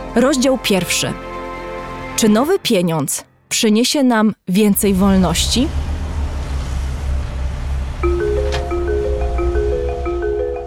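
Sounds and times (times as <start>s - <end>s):
speech: 0.2s - 1.4s, 2.2s - 5.8s
excavator engine rumbling at a construction site: 4.7s - 10.6s
rising whining tones of a construction site excavator: 8.0s - 10.6s.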